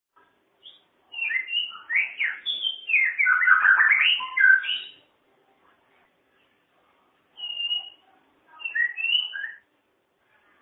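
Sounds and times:
cage bird singing a masteran training song: 0.6s - 5.1s, 7.3s - 9.7s.

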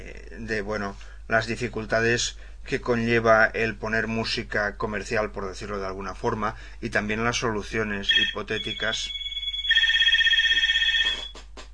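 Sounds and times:
speech: 0.4s - 9.2s
telephone ringing with a bright warbling electronic trill: 8.0s - 11.4s.

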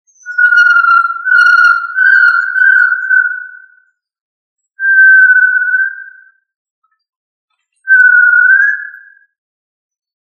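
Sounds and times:
tinamou giving long pure whistled notes: 0.1s - 3.8s, 4.8s - 6.4s, 7.9s - 9.3s.

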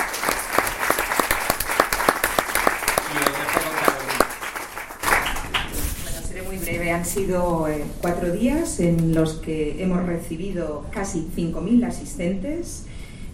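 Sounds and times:
audience applause at a film festival closing event: 0.0s - 5.8s
speech: 7.0s - 12.9s.

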